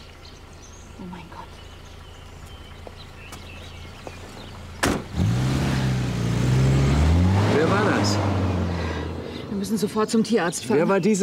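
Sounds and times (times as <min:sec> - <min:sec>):
car driving away: 0:01.8 - 0:10.7
speech: 0:09.7 - 0:11.2.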